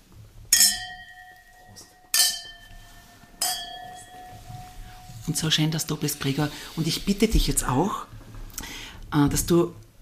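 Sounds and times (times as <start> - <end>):
wine glasses clinking in a toast: 0.5 - 5.6
speech: 5.3 - 8.2, 9.1 - 9.8.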